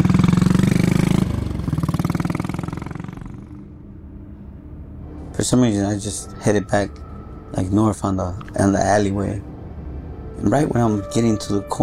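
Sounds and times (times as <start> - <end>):
motorcycle engine idling: 0.0 - 3.9
speech: 5.5 - 9.5, 10.4 - 11.8.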